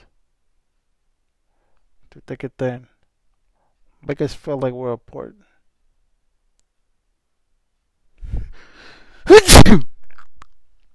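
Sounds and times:
speech: 2.1s - 2.9s, 4.0s - 5.5s, 9.3s - 9.9s
person sneezing: 9.2s - 10.0s.

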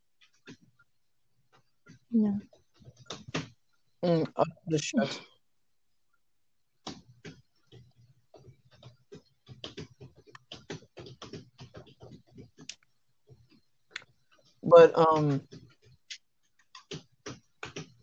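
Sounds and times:
loud typing on a keyboard: 0.2s - 0.8s, 1.4s - 3.7s, 6.8s - 18.0s
speech: 2.1s - 2.6s, 4.0s - 5.3s, 14.8s - 15.6s.

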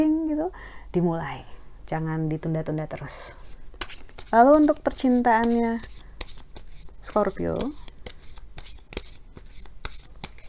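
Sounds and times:
speech: 0.0s - 3.5s, 4.3s - 6.0s, 7.1s - 7.9s
tarot cards being shuffled by hand: 3.4s - 10.4s.

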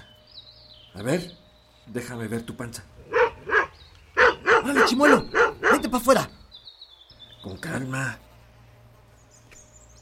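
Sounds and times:
speech: 1.0s - 3.1s, 4.6s - 6.4s, 7.4s - 8.3s
dog barking: 3.1s - 6.0s.

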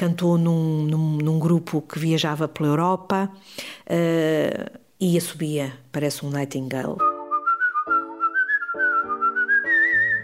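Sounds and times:
speech: 0.0s - 7.1s
man whistling a wavering rising melody: 7.0s - 10.2s.

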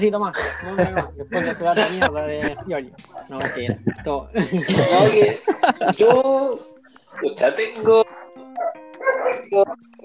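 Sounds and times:
speech: 0.0s - 8.1s, 9.5s - 10.0s
laughter: 0.3s - 8.0s
dogs barking: 1.4s - 4.0s, 4.6s - 6.1s, 6.8s - 9.8s.

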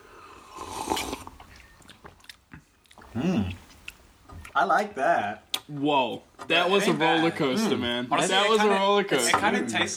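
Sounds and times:
mouth noises: 0.0s - 4.6s
slurping hot freshly brewed coffee: 0.0s - 4.6s
throaty swallow: 0.0s - 4.6s
speech: 3.2s - 3.6s, 4.6s - 9.9s.

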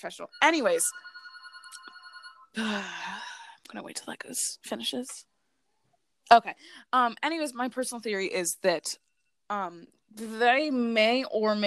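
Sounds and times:
speech: 0.0s - 1.9s, 2.6s - 5.3s, 6.3s - 11.6s
telephone ringing with a bright electronic tone: 0.0s - 2.6s.

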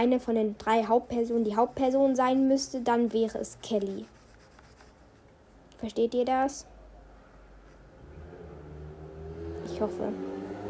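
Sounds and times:
speech: 0.0s - 4.2s, 5.8s - 6.7s, 9.8s - 10.4s
motorcycle driving past outside: 7.8s - 10.6s.

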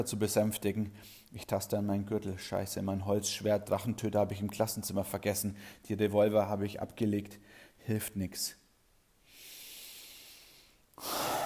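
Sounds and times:
speech: 0.0s - 8.6s, 11.0s - 11.4s
deep breath in: 9.2s - 11.4s.

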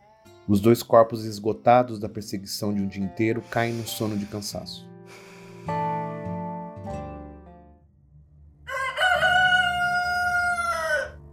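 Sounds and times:
speech: 0.5s - 4.9s
rooster crowing: 8.7s - 11.2s.

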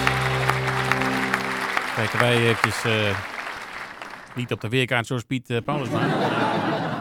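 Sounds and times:
applause with rhythmic clapping: 0.0s - 4.9s
speech: 2.0s - 3.3s, 4.4s - 6.9s
laughter: 5.7s - 6.9s.

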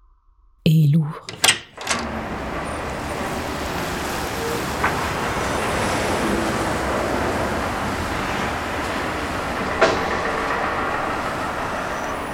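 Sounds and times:
door locks being undone: 1.2s - 2.5s
street-like noise: 1.3s - 12.3s.

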